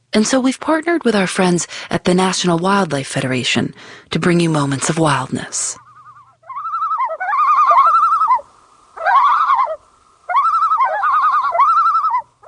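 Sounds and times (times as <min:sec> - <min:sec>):
speech: 0:00.2 - 0:05.8
common loon tremolo calls: 0:05.4 - 0:12.4.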